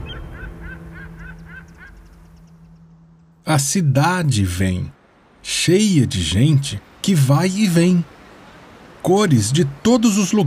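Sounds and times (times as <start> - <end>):
flock of geese honking: 0.0 - 2.4
steady low rumble: 0.0 - 6.8
speech: 3.4 - 5.0, 5.6 - 8.1, 9.0 - 10.4.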